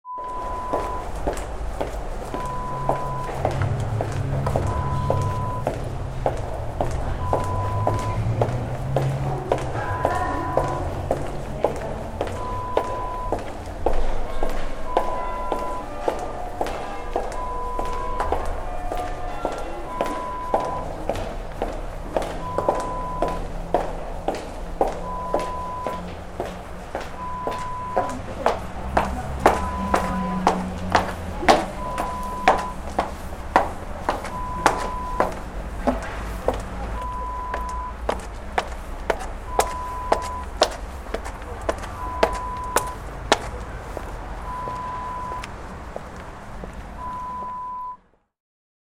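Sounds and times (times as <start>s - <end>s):
footsteps in a subway: 0.1s - 48.2s.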